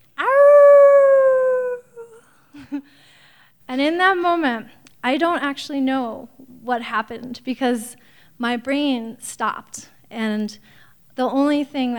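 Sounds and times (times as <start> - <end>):
animal howling in a dark forest: 0.2 - 2.0
speech: 3.7 - 11.9.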